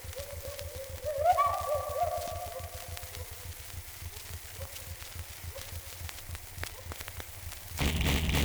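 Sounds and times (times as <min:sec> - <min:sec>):
gibbon call: 0:00.2 - 0:03.4
loud rushing burst: 0:07.8 - 0:08.4
steady noisy hum: 0:07.8 - 0:08.4.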